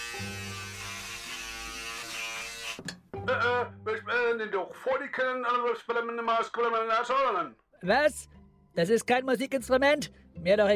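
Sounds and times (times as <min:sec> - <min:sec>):
electric razor buzzing, imitating a hornet: 0:00.0 - 0:02.8
speech: 0:00.2 - 0:00.4, 0:02.8 - 0:10.7.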